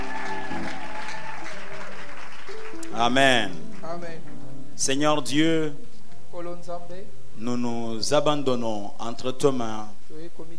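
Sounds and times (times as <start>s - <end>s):
church congregation cheering and shouting during worship: 0.0s - 2.0s
church congregation clapping during worship: 0.0s - 4.4s
speech: 3.0s - 5.8s, 6.4s - 10.5s.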